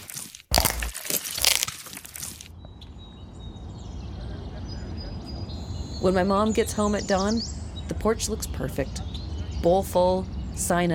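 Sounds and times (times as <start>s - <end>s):
wet crunching and bones snapping as teeth bite through a face and skull: 0.0s - 2.4s
speech: 6.0s - 10.9s.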